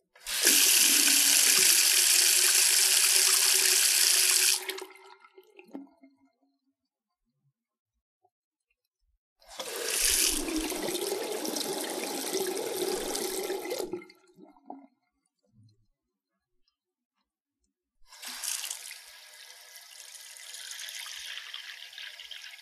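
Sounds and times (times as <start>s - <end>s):
faucet water into sink: 0.2s - 5.9s, 9.4s - 14.8s, 18.1s - 22.6s.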